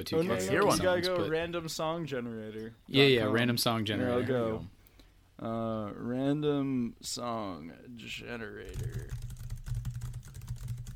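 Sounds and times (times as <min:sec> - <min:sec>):
speech: 0:00.0 - 0:04.8, 0:05.4 - 0:09.2
rapid clicking of computer keyboard keys: 0:08.7 - 0:10.9.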